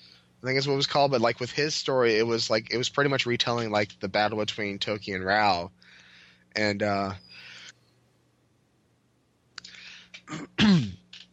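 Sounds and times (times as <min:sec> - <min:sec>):
speech: 0:00.4 - 0:07.4, 0:10.3 - 0:10.9
man coughing roughly: 0:10.3 - 0:11.0.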